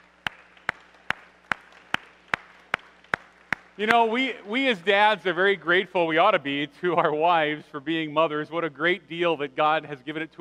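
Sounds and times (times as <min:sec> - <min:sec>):
sharp claps: 0:00.0 - 0:04.5
crowd clapping for fathers: 0:00.0 - 0:05.8
speech: 0:03.8 - 0:10.3.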